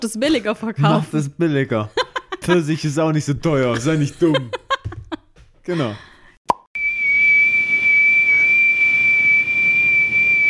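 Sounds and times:
speech: 0.0s - 4.6s, 5.6s - 6.1s
laughter: 1.7s - 6.0s
steady high-pitched whistling tone in headphones: 6.8s - 10.4s.

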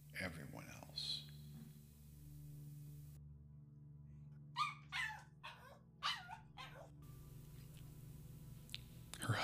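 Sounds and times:
low hum: 0.0s - 9.4s
speech: 0.2s - 1.2s
dog barking inside a house greeting a woman: 4.6s - 6.9s.

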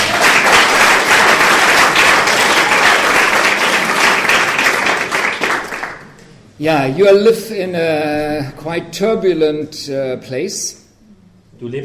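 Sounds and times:
audience applause: 0.0s - 6.2s
speech: 6.6s - 10.8s, 11.6s - 11.8s.

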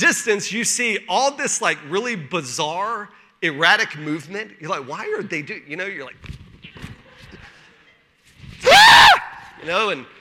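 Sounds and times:
speech: 0.0s - 6.4s, 9.6s - 10.2s
person making a shrill imitation of a scream: 8.6s - 9.5s.

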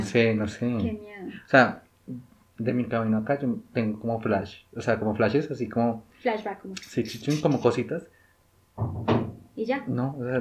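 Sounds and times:
speech: 0.0s - 8.2s, 8.8s - 10.3s
heavy thumps through wall from neighbor moving things: 8.8s - 9.5s.

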